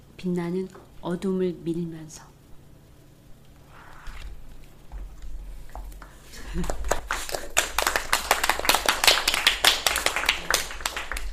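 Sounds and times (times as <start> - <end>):
speech: 0.2 - 2.3, 6.5 - 6.8
small group clapping by hand after a poem reading: 6.0 - 11.3
laughter: 6.3 - 7.5.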